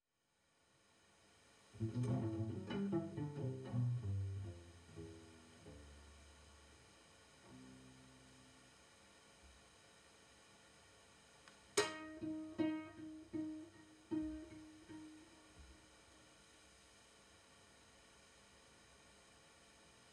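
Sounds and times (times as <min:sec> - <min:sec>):
two cellos at a birthday concert: 0:01.8 - 0:06.7, 0:11.8 - 0:15.8.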